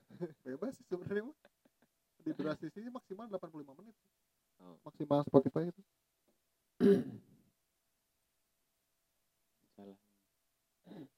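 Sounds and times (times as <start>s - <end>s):
speech: 0.2s - 1.5s, 2.2s - 6.0s, 6.8s - 7.2s
cough or throat clearing: 6.8s - 7.3s.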